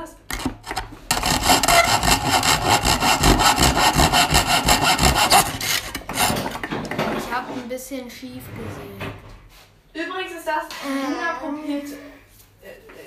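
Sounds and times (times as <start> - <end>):
hand saw rasping through metal: 0.3 - 6.7
speech: 8.0 - 9.1, 10.5 - 12.2.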